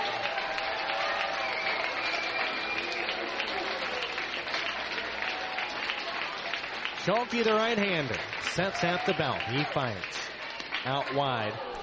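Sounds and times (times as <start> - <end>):
large baseball stadium crowd cheering and clapping: 0.0 - 11.8
faint whistles from a stadium crowd: 1.4 - 3.2
speech: 7.1 - 10.2, 10.8 - 11.7.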